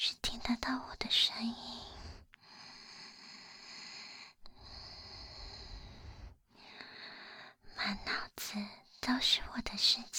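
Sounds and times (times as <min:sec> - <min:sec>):
speech: 0:00.0 - 0:01.8, 0:08.5 - 0:10.1
soft slow breathing: 0:01.5 - 0:07.6.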